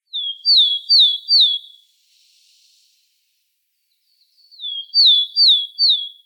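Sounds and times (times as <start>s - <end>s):
willow tit Parus montanus calling: 0.1s - 1.8s, 4.4s - 6.2s.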